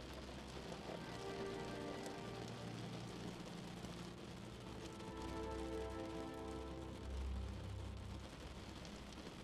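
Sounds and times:
steady rain tapping on a window: 0.0 - 9.4.

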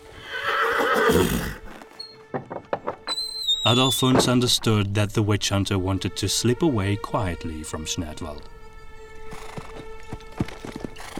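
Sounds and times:
saddled horse whinnying as its rider mounts: 0.1 - 2.2, 3.0 - 4.3, 10.5 - 11.1
horse hooves clopping: 1.0 - 4.9, 8.8 - 11.1
speech: 1.1 - 1.6, 3.6 - 8.6.

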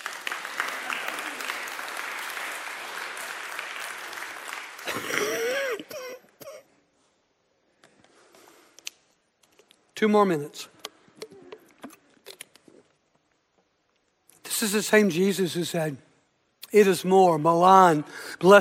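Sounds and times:
crowd clapping: 0.0 - 6.0
people whooping and calling out: 0.2 - 3.0
speech: 4.9 - 6.0, 10.0 - 10.7, 14.6 - 16.1, 16.7 - 18.5.

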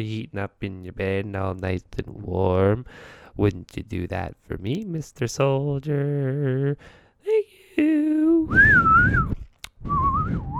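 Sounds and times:
speech: 0.0 - 10.5
person whistling a wavering melody: 8.4 - 10.5
click: 9.3 - 9.8.

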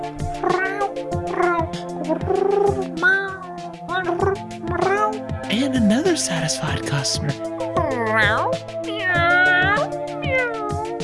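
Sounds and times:
cat meowing: 0.4 - 5.2, 7.8 - 11.0
speech: 6.2 - 7.6, 8.2 - 8.7.

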